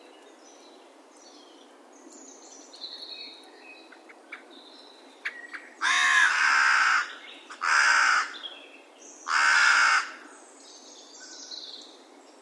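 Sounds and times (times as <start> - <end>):
small birds chirping faintly: 0.0 - 12.3
Carrion crow cawing: 5.8 - 8.4, 9.3 - 10.2.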